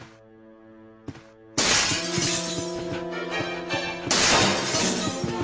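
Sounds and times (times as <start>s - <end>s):
tinkling glass shards: 1.6s - 2.8s, 4.1s - 5.2s
glass window shattering: 1.6s - 2.9s, 4.1s - 5.3s
glass breaking: 1.6s - 3.0s, 4.1s - 5.3s.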